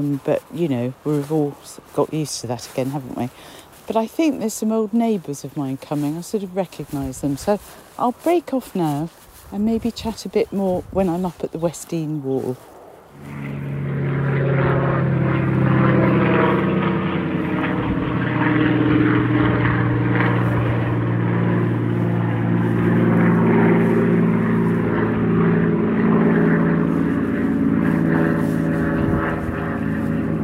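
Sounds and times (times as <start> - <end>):
speech: 0.0 - 13.5
Spitfire and light aircraft propeller engines droning overhead: 0.0 - 30.4.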